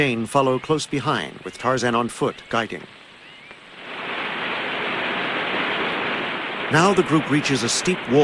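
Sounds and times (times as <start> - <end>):
speech: 0.0 - 3.0, 6.7 - 8.2
waterfall plunging into a shallow stream: 3.8 - 8.2.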